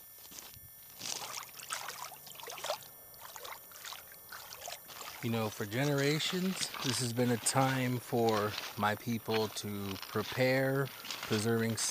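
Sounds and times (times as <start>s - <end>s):
water trickling and splashing in shallow water: 1.2s - 5.3s
speech: 5.2s - 11.8s.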